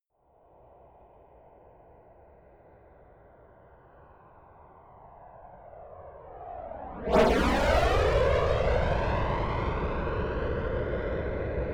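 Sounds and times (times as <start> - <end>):
F-22 Raptor military jet flyby: 6.4 - 11.6.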